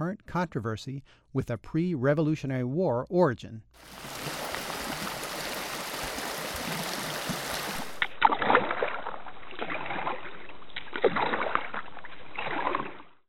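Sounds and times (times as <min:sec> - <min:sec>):
speech: 0:00.0 - 0:04.2
stream flowing: 0:03.8 - 0:08.2
canoe paddle strokes splashing: 0:03.8 - 0:13.2.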